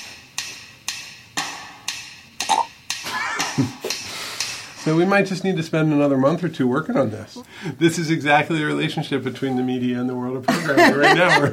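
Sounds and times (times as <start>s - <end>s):
sharp evenly spaced ticks: 0.3s - 4.8s
person burping: 2.5s - 2.7s
speech: 3.6s - 4.0s, 4.8s - 11.5s
laughter: 8.0s - 11.5s.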